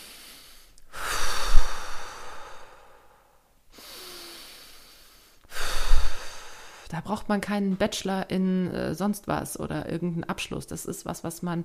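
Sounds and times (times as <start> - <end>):
slow deep breathing: 0.0 - 6.9
speech: 6.9 - 11.6.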